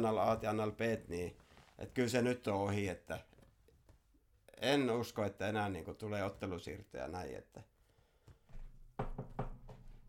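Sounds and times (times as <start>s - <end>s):
speech: 0.0s - 3.3s, 4.6s - 7.7s
hollow knocks on wood: 9.0s - 10.0s.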